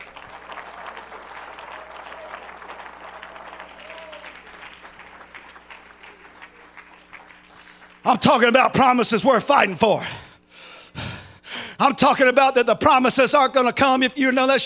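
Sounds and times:
large crowd applauding: 0:00.0 - 0:08.6
speech: 0:08.1 - 0:10.2, 0:11.8 - 0:14.6.

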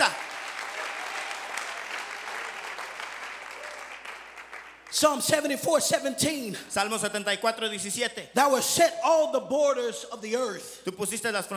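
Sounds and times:
audience clapping hands: 0:00.0 - 0:05.0
speech: 0:04.9 - 0:11.5.

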